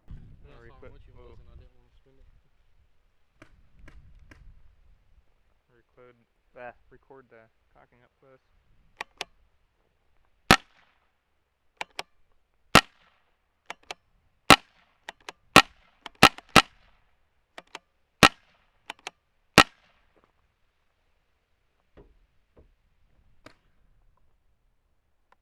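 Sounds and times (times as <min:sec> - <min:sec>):
shotgun cocking: 0:09.0 - 0:09.4, 0:10.5 - 0:10.9, 0:11.8 - 0:16.9, 0:17.5 - 0:20.0.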